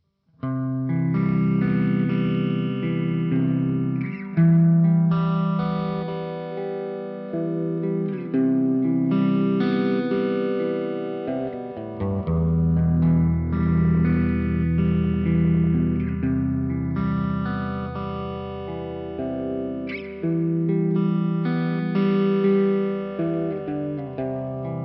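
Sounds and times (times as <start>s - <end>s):
electric guitar with overdrive, phaser and reverb: 0.4s - 24.8s.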